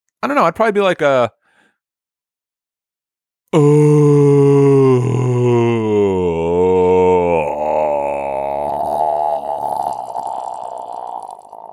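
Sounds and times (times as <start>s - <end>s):
speech: 0.2s - 1.4s, 3.5s - 4.2s
person groaning on purpose: 3.6s - 11.7s.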